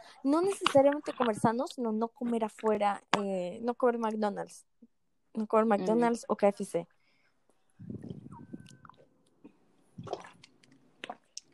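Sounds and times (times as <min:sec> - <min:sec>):
speech: 0:00.2 - 0:04.7, 0:05.4 - 0:07.0
person sipping and swallowing water: 0:07.8 - 0:11.5
small squishy wet mouth clicks: 0:07.8 - 0:11.5.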